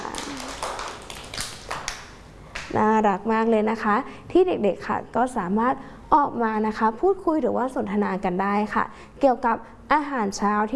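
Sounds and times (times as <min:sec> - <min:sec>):
children clapping for a classmate in a school: 0:00.0 - 0:02.7
speech: 0:02.7 - 0:10.7.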